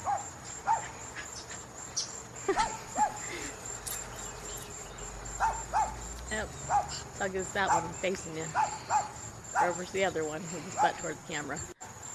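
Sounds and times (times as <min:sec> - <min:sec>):
dog barking while running in a backyard: 0:00.0 - 0:00.9, 0:05.4 - 0:06.0, 0:06.7 - 0:07.0, 0:07.7 - 0:09.8
faint outdoor noise: 0:00.0 - 0:12.1
steady high insect-like whine: 0:00.0 - 0:12.1
speech: 0:07.2 - 0:11.7.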